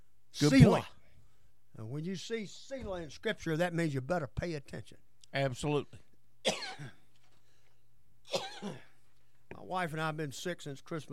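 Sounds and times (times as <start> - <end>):
speech: 0.4 - 1.0, 1.8 - 7.0, 8.3 - 8.8, 9.6 - 11.1
person sick with RSV coughing: 6.4 - 7.0, 8.3 - 9.0.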